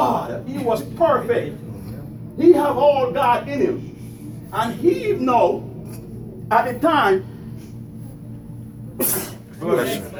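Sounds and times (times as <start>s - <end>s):
speech: 0.0s - 1.7s, 2.4s - 3.9s, 4.5s - 5.7s, 6.5s - 7.3s, 9.0s - 10.1s
person sneezing: 9.0s - 9.5s.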